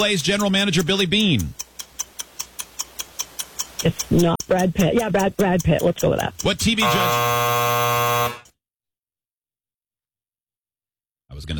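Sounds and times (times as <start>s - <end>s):
speech: 0.0s - 1.6s, 3.8s - 8.4s, 11.4s - 11.5s
game show timer buzzer: 6.6s - 8.6s.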